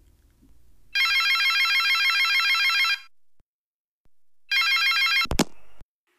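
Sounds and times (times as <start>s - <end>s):
telephone ringing with bell trills: 0.9s - 3.1s, 4.5s - 5.3s.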